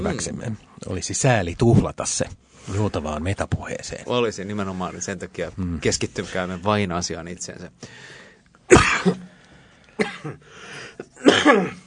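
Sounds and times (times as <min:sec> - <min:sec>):
speech: 0:00.0 - 0:09.2, 0:10.0 - 0:10.6, 0:11.4 - 0:11.8
loud harsh coughs: 0:08.7 - 0:09.3, 0:10.0 - 0:11.8.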